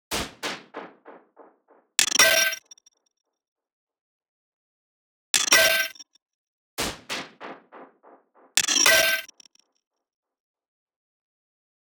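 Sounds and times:
percussion loop from a drum sample pack: 0:00.0 - 0:02.1, 0:06.8 - 0:09.2.

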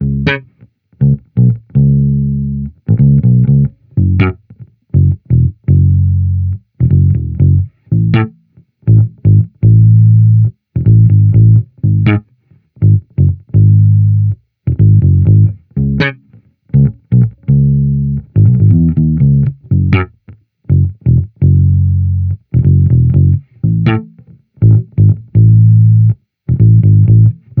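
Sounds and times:
amped slap electric bass loop in C sharp: 0:00.0 - 0:27.5.

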